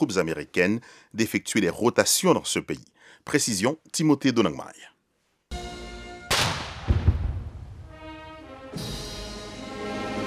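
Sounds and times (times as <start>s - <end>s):
speech: 0.0s - 5.0s
loud cannon boom of a salute: 6.3s - 7.8s
brass band chords playing outdoors at a ceremony: 7.7s - 10.2s.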